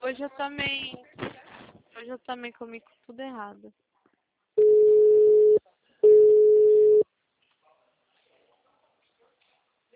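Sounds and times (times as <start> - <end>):
speech: 0.1 - 1.4, 2.0 - 3.9
telephone ringback tones while a call is being placed: 4.6 - 7.0.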